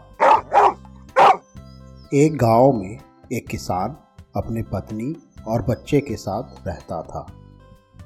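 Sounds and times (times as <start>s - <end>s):
dog barking: 0.1s - 1.4s
speech: 2.1s - 7.4s.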